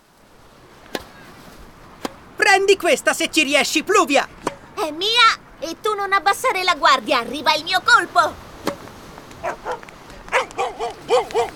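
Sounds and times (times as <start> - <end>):
speech: 2.6 - 8.4, 9.4 - 9.8, 11.1 - 11.5
small dog barking: 9.4 - 11.5.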